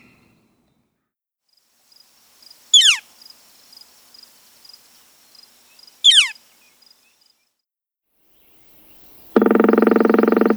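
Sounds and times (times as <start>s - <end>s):
northern flicker giving kek calls: 2.7s - 3.2s, 4.1s - 7.2s, 8.4s - 10.5s.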